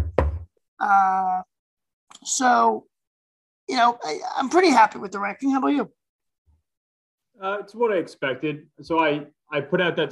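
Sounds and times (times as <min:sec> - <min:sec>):
knuckles knocking on wood: 0:00.0 - 0:00.5
speech: 0:00.8 - 0:01.5, 0:02.2 - 0:02.9, 0:03.7 - 0:06.0, 0:07.4 - 0:10.0.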